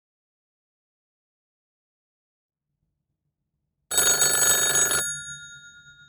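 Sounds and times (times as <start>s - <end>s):
old-fashioned telephone bell ringing: 3.9s - 6.0s.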